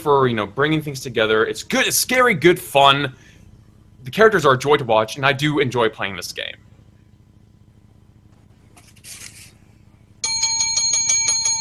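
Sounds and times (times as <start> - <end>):
speech: 0.0 - 3.3, 4.0 - 6.7
bell ringing with rapid rattling trill: 10.2 - 11.5.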